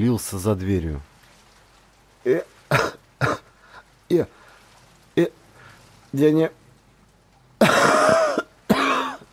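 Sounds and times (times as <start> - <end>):
speech: 0.0 - 1.1, 2.2 - 3.4, 4.1 - 4.4, 5.2 - 5.4, 6.1 - 6.6
person coughing: 2.7 - 3.5, 7.6 - 9.3.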